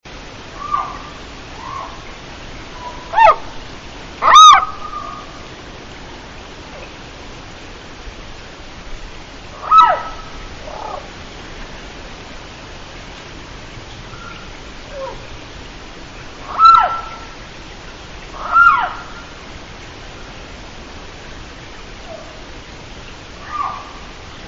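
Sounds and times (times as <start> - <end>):
ishikawagaeru frog calling: 0.5 - 3.6, 4.2 - 5.5, 9.5 - 11.1, 14.1 - 15.4, 16.4 - 17.4, 18.3 - 19.4, 23.4 - 24.2.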